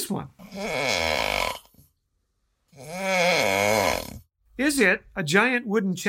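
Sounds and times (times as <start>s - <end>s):
speech: 0.1s - 1.6s, 4.6s - 6.0s
man snoring loudly: 0.4s - 1.8s, 2.7s - 4.3s.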